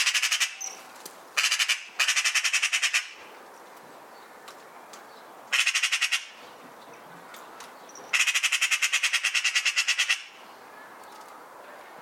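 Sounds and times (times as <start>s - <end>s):
Eurasian magpie Pica pica giving dry machine-gun chatters: 1.4s - 3.2s, 5.5s - 6.3s, 8.1s - 10.4s.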